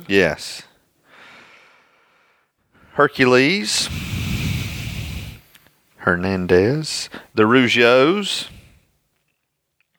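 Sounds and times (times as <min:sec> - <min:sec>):
speech: 0:00.0 - 0:00.7, 0:03.0 - 0:04.1, 0:06.0 - 0:08.6
heavy breath after a swig of water: 0:01.0 - 0:02.9, 0:03.8 - 0:05.8.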